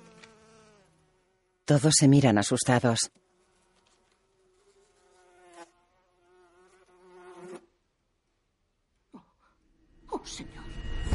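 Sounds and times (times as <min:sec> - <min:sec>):
flies buzzing with thin droning hum: 0:00.0 - 0:07.8
speech: 0:01.7 - 0:03.2.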